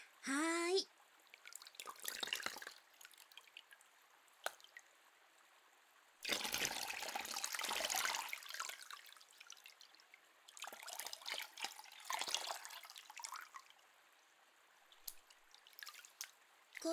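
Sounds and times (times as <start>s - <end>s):
speech: 0.3s - 0.5s
hot bath water scooped up by hand and poured back: 1.0s - 5.7s, 6.2s - 16.9s.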